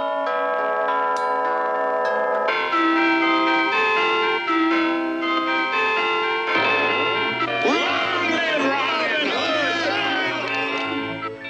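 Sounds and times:
church bells ringing: 0.0 - 11.4
town chimes: 0.0 - 11.4.

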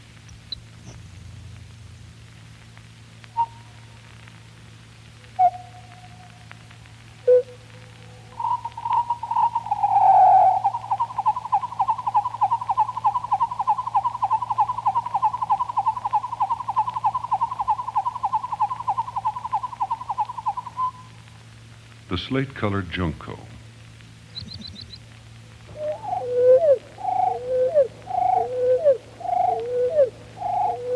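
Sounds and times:
faint low hum: 0.0 - 30.9
Grasshopper sparrow song slowed down: 8.3 - 21.1, 24.3 - 25.0, 25.7 - 30.9
speech: 22.2 - 23.5.

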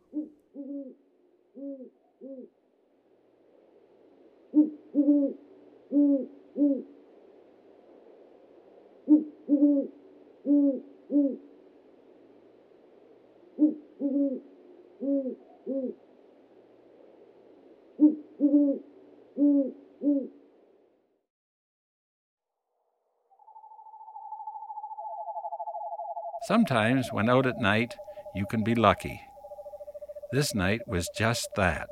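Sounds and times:
great horned owl hooting: 0.0 - 2.5, 4.5 - 7.2, 9.0 - 11.6, 13.4 - 16.1, 17.9 - 20.4, 23.3 - 31.8
speech: 26.4 - 29.3, 30.3 - 31.8.

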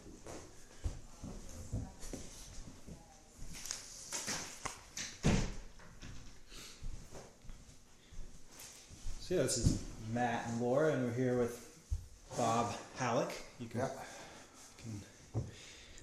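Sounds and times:
door pushed shut with a dull thud: 5.2 - 5.7
speech: 9.3 - 11.7, 12.4 - 14.1, 14.8 - 15.1.

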